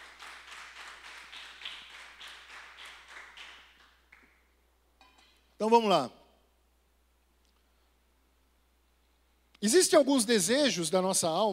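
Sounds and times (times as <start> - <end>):
crowd applauding: 0.0 - 4.4
speech: 5.6 - 6.2, 9.6 - 11.5.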